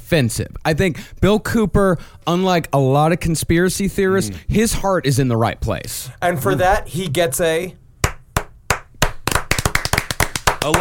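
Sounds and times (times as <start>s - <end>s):
speech: 0.1s - 7.8s
hand clapping: 8.0s - 10.7s.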